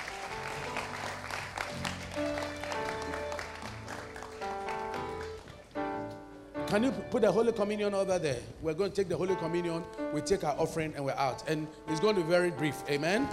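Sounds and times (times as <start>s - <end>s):
crowd clapping loudly: 0.0s - 5.8s
instrumental music with sustained keyboard-like tones: 0.0s - 13.3s
speech: 6.7s - 13.3s.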